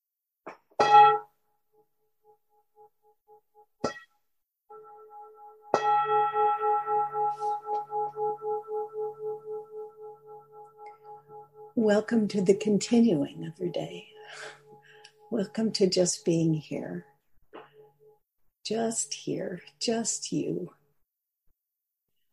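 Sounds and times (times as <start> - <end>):
meditation bell ringing: 4.7 - 11.9
speech: 11.8 - 14.6, 15.3 - 17.1, 18.7 - 20.8.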